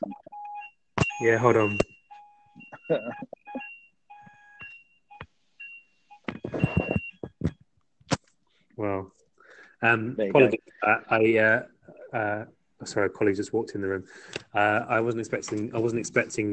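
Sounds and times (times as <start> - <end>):
fire alarm test beeping: 0.0 - 7.4
speech: 1.2 - 1.9, 2.9 - 3.4, 9.8 - 16.5.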